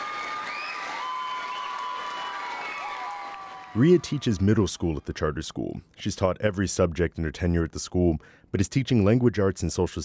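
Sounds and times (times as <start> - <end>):
large school audience applauding: 0.0 - 4.6
cheers and high whistle-like shouts: 0.0 - 4.7
speech: 3.8 - 10.0.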